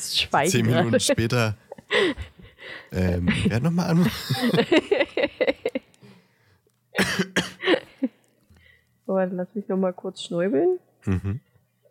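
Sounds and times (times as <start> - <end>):
speech: 0.0 - 5.7, 9.1 - 11.5
laughter: 3.1 - 5.9
person coughing with harsh throaty coughs: 7.0 - 7.9.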